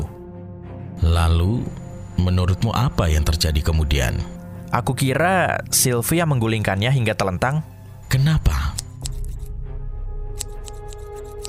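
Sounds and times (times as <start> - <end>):
speech: 1.0 - 8.6
scissors cutting grass: 8.7 - 9.5, 10.4 - 11.4.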